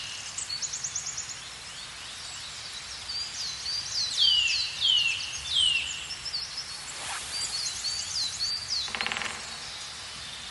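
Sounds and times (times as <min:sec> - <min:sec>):
Eurasian nuthatch, Sitta europaea, calling with downslurred whistled notes: 0:04.0 - 0:09.9.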